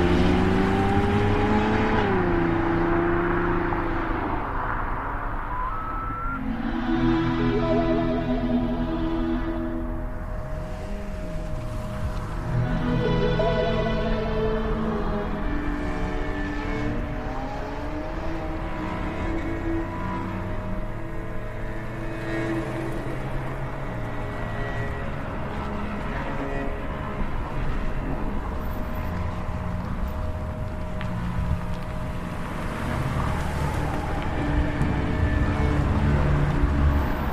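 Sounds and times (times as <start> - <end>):
car engine humming while driving along a road: 0.0 - 37.3
tire and road noise: 0.0 - 37.3.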